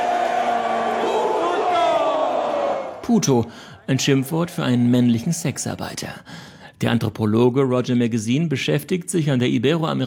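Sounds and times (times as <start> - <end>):
large crowd of home football fans shouting together at a goal kick: 0.0 - 3.0
speech: 3.1 - 10.0.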